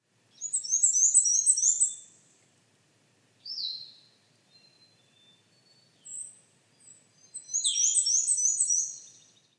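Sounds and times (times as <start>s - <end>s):
black-and-white warbler singing: 0.4s - 2.2s, 3.4s - 9.5s.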